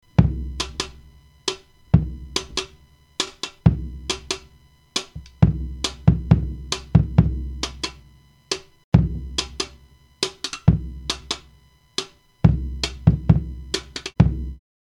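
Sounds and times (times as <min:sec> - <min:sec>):
kick drum: 0:00.1 - 0:01.1, 0:01.9 - 0:02.8, 0:03.6 - 0:04.5, 0:05.1 - 0:08.0, 0:08.9 - 0:09.8, 0:10.6 - 0:11.5, 0:12.4 - 0:14.6.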